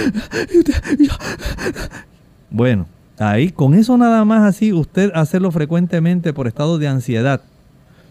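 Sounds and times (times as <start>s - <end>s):
person breathing in rapid forced heavy gasps demonstrating hyperventilation: 0.0s - 2.1s
speech: 0.0s - 7.5s.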